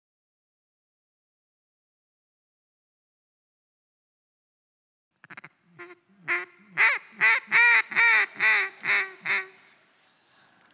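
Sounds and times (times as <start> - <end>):
duck call blown in nasal quacks: 5.2 - 9.7.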